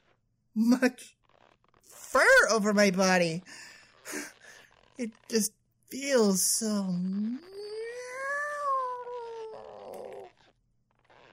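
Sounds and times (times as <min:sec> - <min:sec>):
speech: 0:00.6 - 0:01.2, 0:01.9 - 0:04.3, 0:05.0 - 0:07.6
person imitating a long drawn-out cat meow: 0:07.0 - 0:10.3.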